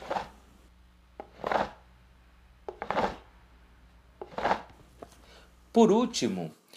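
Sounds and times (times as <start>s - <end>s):
upturned cup scraped across the floor: 0.0s - 0.4s, 1.2s - 1.8s, 2.7s - 3.3s, 4.2s - 5.4s
speech: 5.8s - 6.6s.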